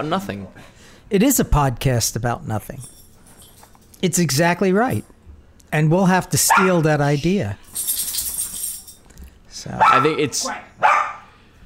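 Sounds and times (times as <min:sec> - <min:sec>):
speech: 0:00.0 - 0:03.0, 0:04.0 - 0:05.1, 0:05.7 - 0:08.1, 0:09.6 - 0:10.7
dog barking: 0:06.5 - 0:06.8, 0:09.8 - 0:11.3.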